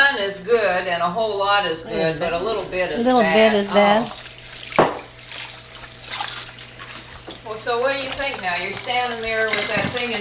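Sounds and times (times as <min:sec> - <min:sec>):
speech: 0:00.3 - 0:04.3, 0:07.5 - 0:10.1
low hum: 0:00.4 - 0:06.0
running water splashing and trickling: 0:01.8 - 0:10.1.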